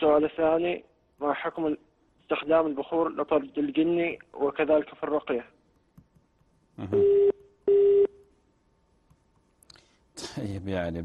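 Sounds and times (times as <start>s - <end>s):
speech: 0.0s - 5.6s, 6.8s - 7.4s, 10.4s - 11.0s
phone busy tone after a call drops: 6.9s - 8.2s.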